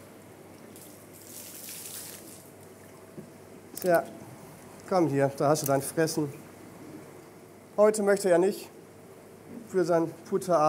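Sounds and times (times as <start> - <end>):
water splashing and sloshing in a tank churned by an animal with suckers: 0.6 - 3.1
speech: 3.8 - 4.2, 4.9 - 6.4, 7.8 - 8.8, 9.7 - 10.6.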